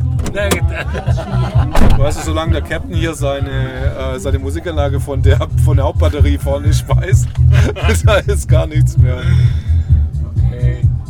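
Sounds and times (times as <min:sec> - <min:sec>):
door thudding shut: 0:00.0 - 0:00.7, 0:01.7 - 0:02.5
low engine-like rumble: 0:00.0 - 0:11.0
speech: 0:00.4 - 0:09.8
laughter: 0:00.5 - 0:04.5, 0:05.9 - 0:08.6
sharp broadband knocks: 0:01.8 - 0:02.3.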